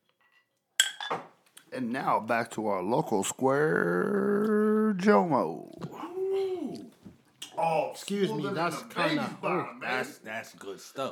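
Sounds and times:
drinking glasses clinking in a toast: 0.8s - 1.3s
speech: 1.8s - 5.9s, 7.6s - 11.0s.

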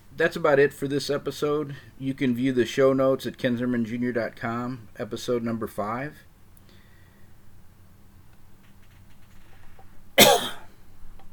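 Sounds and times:
quiet room hum: 0.0s - 11.3s
speech: 0.2s - 6.3s
sharp cough: 10.2s - 10.7s.

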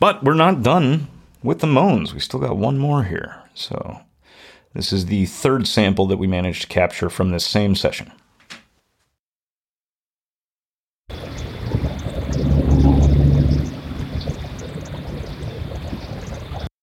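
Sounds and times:
speech: 0.0s - 8.2s
vehicle rumbling: 11.1s - 16.6s.

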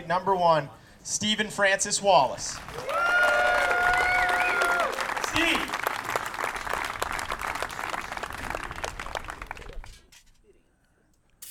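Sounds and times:
speech: 0.1s - 3.0s
crowd applauding: 2.5s - 10.0s
crowd whistling: 2.8s - 5.1s.

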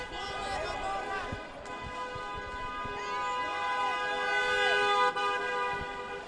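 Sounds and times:
noisy protest crowd with voices calling out: 0.0s - 5.1s
car horn honking while driving through a protest crowd: 1.7s - 6.2s.

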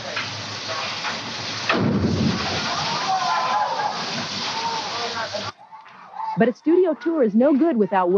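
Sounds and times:
800 gallons of water cascading down in a theme park water-tank effect: 0.0s - 5.6s
speech: 6.4s - 8.1s.

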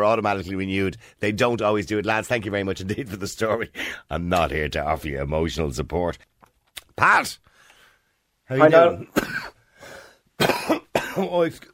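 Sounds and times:
speech: 0.0s - 6.3s, 7.0s - 7.5s, 8.5s - 9.6s, 11.2s - 11.7s
coughing and throat-clearing from something caught in the throat: 9.0s - 9.6s, 10.4s - 11.4s.

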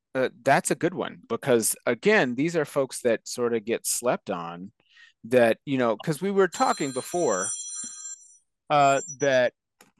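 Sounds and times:
speech: 0.2s - 7.6s, 8.7s - 9.6s
phone ringing with two short loud tonal bursts: 6.5s - 9.2s.

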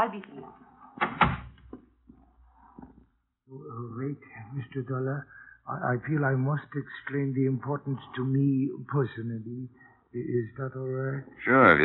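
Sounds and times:
speech: 0.0s - 0.6s, 3.5s - 11.8s
door thudding shut with a sharp knock: 1.0s - 1.8s.

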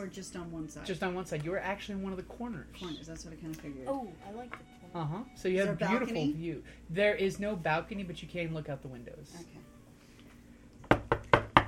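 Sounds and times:
speech: 0.0s - 9.6s
knocking on a door: 10.8s - 11.6s.

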